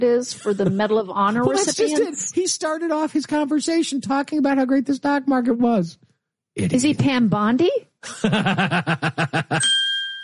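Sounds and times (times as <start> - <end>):
speech: 0.0 - 9.8
pulsing laughter: 0.3 - 1.1, 8.0 - 9.7
bell sound effect dinging: 9.6 - 10.2.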